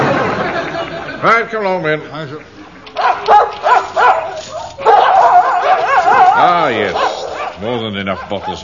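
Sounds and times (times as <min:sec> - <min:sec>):
laughter: 0:00.0 - 0:01.7
speech: 0:01.2 - 0:03.7, 0:06.4 - 0:08.6
several dogs in dog pens barking and yelping: 0:02.9 - 0:08.6.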